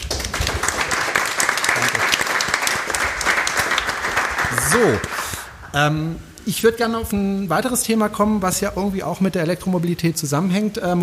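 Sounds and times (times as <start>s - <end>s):
room full of people applauding: 0.0s - 5.7s
speech: 4.7s - 5.2s, 5.8s - 11.0s.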